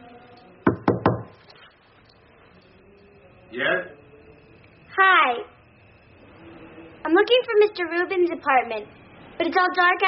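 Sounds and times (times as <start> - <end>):
firm knocking on a wooden door: 0.7 - 1.4
speech: 3.5 - 4.0, 5.0 - 5.6, 7.1 - 10.0.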